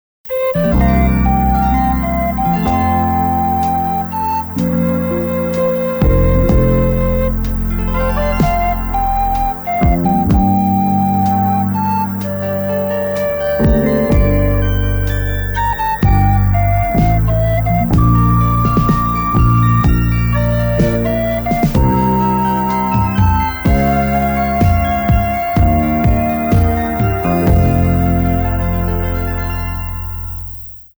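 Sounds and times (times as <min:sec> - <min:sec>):
flute track: 0:00.3 - 0:30.9.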